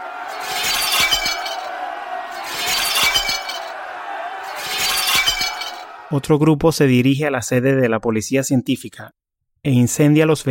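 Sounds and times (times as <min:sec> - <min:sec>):
glass shards falling and tinkling: 0:00.3 - 0:01.8, 0:02.4 - 0:03.7, 0:04.5 - 0:05.9
window glass of government buildings shattering from thrown stones: 0:00.3 - 0:01.8, 0:02.4 - 0:03.7, 0:04.5 - 0:05.8
speech: 0:06.1 - 0:10.4.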